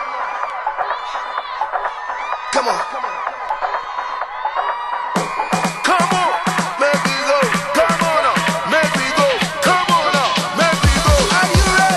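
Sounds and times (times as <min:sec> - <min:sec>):
high-pitched shrieks and whoops from a crowd: 0:00.0 - 0:07.0
crowd screaming and cheering: 0:00.0 - 0:11.9
speech: 0:02.5 - 0:03.2.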